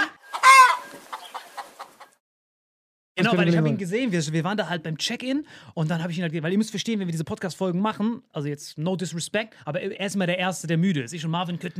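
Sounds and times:
chicken in a bag squawking: 0:00.0 - 0:02.2
speech: 0:03.2 - 0:11.7.

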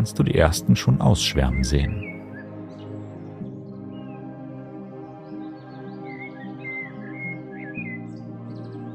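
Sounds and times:
speech: 0:00.0 - 0:02.1
steady low musical drone: 0:00.0 - 0:08.9
small birds chirping and twittering: 0:01.0 - 0:08.9.

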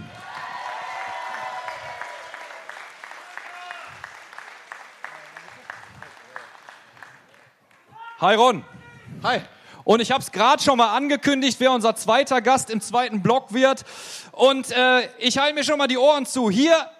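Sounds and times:
audience clapping to welcome a new player onto a stage: 0:00.0 - 0:08.0
speech: 0:08.2 - 0:16.9.

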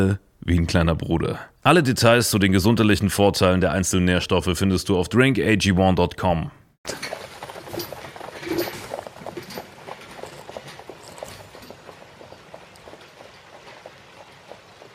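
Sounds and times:
speech: 0:00.0 - 0:07.2
hooves of a horse pulling a carriage clip-clopping: 0:06.9 - 0:14.9.

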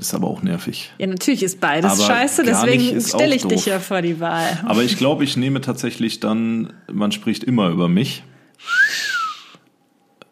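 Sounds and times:
speech: 0:00.0 - 0:08.8
person whistling one short breathy note: 0:08.6 - 0:09.6.

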